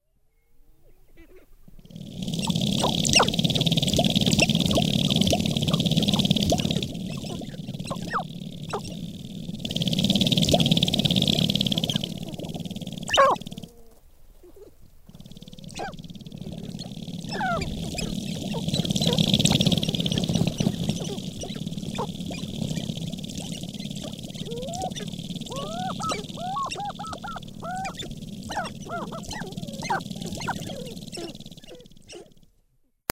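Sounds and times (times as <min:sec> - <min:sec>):
Sharp-tailed Grouse: 0:01.1 - 0:32.5.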